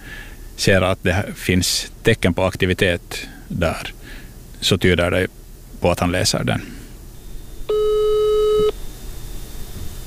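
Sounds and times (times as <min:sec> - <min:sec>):
speech: 0:00.6 - 0:06.8
steady telephone call tone when dialing: 0:07.3 - 0:08.8.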